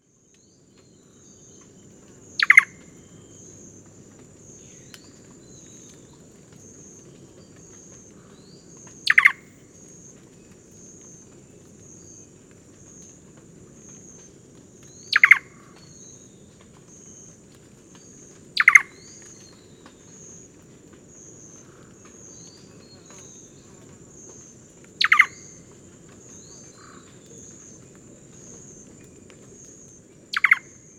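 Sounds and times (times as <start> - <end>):
Cantorchilus nigricapillus calling: 2.4 - 3.4, 8.9 - 9.6, 15.0 - 16.0, 18.6 - 20.5, 25.0 - 30.9.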